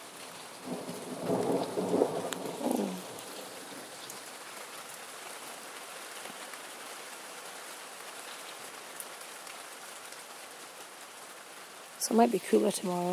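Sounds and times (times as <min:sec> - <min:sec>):
heavy rain: 0:00.0 - 0:13.1
thunder rumbling: 0:00.6 - 0:03.9
speech: 0:12.0 - 0:13.1.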